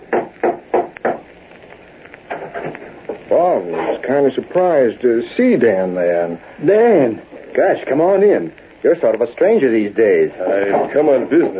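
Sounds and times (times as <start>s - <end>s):
knocking on the wooden door of a house: 0.1s - 1.2s
speech: 3.4s - 11.5s.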